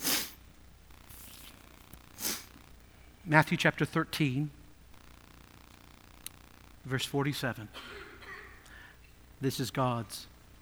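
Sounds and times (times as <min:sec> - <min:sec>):
Bible paper pages rustling as they turn: 0:01.1 - 0:02.0
speech: 0:03.3 - 0:04.6, 0:06.9 - 0:08.0, 0:09.4 - 0:10.3.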